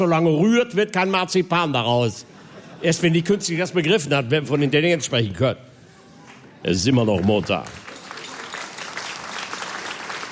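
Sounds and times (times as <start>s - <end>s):
speech: 0.0s - 5.7s, 6.6s - 7.8s
audience applause at a live comedy-style stage show: 6.3s - 10.2s.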